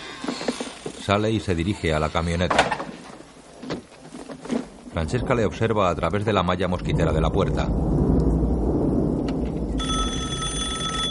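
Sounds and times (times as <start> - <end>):
speech: 1.1 - 2.7, 5.0 - 8.0
low rumbling background: 4.8 - 11.0
home telephone bell ringing: 9.8 - 11.0.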